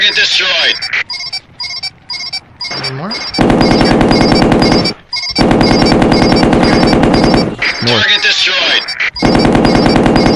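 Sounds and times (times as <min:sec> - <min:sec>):
speech: 0:00.0 - 0:01.2, 0:02.9 - 0:03.8, 0:07.9 - 0:09.0
rapid machine gun fire in a video game: 0:03.3 - 0:07.9, 0:09.2 - 0:10.3.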